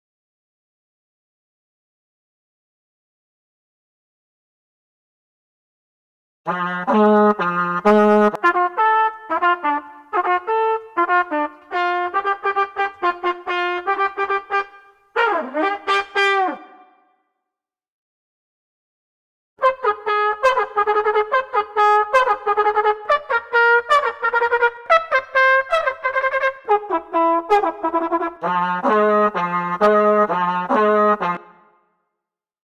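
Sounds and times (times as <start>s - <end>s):
solo trumpet: 6.5s - 17.0s, 19.6s - 31.8s.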